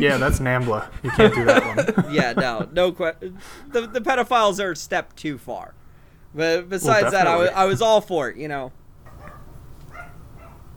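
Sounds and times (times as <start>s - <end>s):
speech: 0.0s - 8.8s
steady low hum: 0.0s - 10.7s
laughter: 0.6s - 4.4s, 6.8s - 8.0s
dog giving short high-pitched barks: 9.0s - 10.7s.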